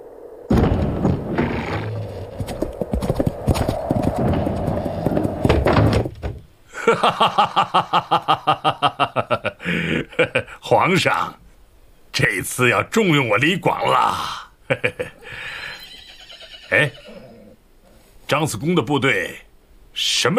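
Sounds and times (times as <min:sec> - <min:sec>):
galloping hoofbeats: 0:01.4 - 0:06.3
heavy door or gate rumbling and clattering open: 0:05.4 - 0:06.5
laughter: 0:06.8 - 0:10.6, 0:14.7 - 0:15.3
speech: 0:06.9 - 0:09.0, 0:09.7 - 0:11.4, 0:12.2 - 0:14.9, 0:16.7 - 0:17.0, 0:18.3 - 0:19.4, 0:20.0 - 0:20.3.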